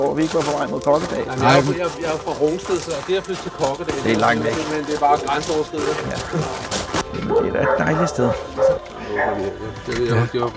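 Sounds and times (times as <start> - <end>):
speech: 0.0 - 10.5
dog barking and yipping: 7.2 - 9.6.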